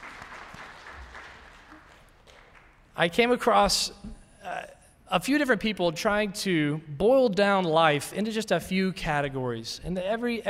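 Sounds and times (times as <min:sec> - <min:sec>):
audience clapping after a speaker's talk: 0:00.0 - 0:03.0
speech: 0:03.0 - 0:04.1, 0:05.1 - 0:10.4.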